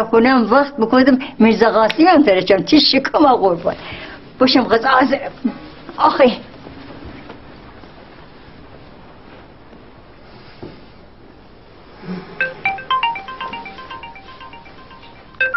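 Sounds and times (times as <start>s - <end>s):
speech: 0.0s - 6.5s
telephone ringtone with bright melodic tone pattern: 12.4s - 15.5s.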